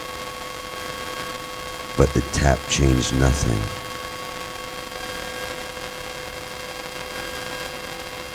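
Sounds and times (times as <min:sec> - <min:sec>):
speech: 0:02.0 - 0:03.8
monotonous radio static hiss: 0:02.0 - 0:04.0.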